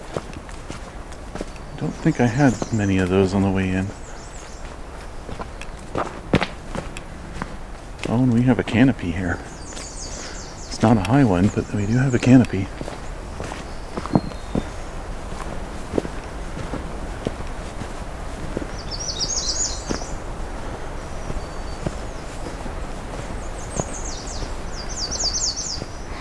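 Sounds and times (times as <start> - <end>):
footsteps on soft peaty bouncy ground under a low canopy: 0.0 - 26.1
short bird calls: 0.0 - 26.1
speech: 1.8 - 4.0, 8.2 - 9.5, 10.8 - 12.8.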